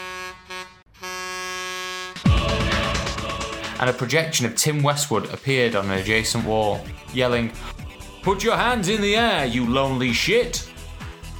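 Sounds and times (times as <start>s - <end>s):
air horn blasts from a gadget's disco function: 0.0s - 3.6s
loud burst of noise: 2.2s - 4.1s
speech: 3.8s - 10.7s.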